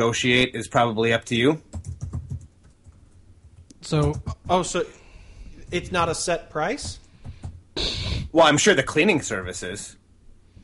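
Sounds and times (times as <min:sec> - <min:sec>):
speech: 0:00.0 - 0:01.7, 0:03.9 - 0:05.0, 0:05.7 - 0:07.0, 0:08.4 - 0:10.0
typing on a computer keyboard: 0:01.7 - 0:04.6.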